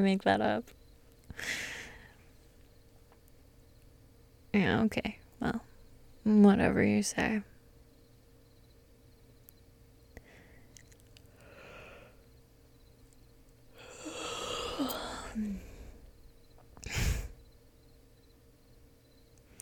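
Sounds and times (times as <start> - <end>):
speech: 0.0 - 0.8, 1.4 - 1.8, 4.5 - 7.5
long breathy yawn with a faint voiced groan: 13.8 - 16.0.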